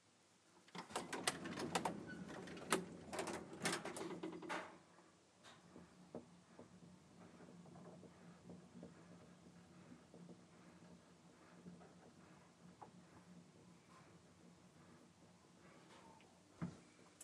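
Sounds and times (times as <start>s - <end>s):
lift doors clattering and rattling: 0.8s - 4.8s.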